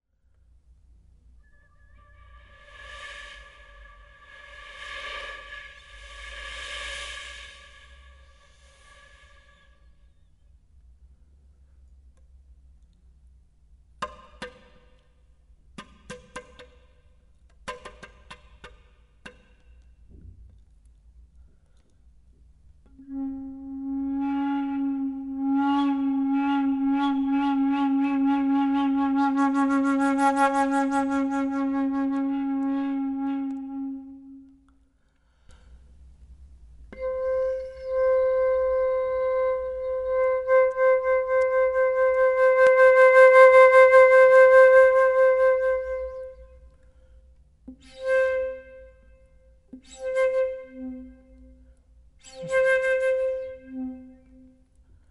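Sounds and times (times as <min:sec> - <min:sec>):
solo flute playing: 0:01.4 - 0:09.8, 0:22.9 - 0:34.7, 0:36.9 - 0:46.6, 0:47.8 - 0:51.6, 0:52.2 - 0:54.6.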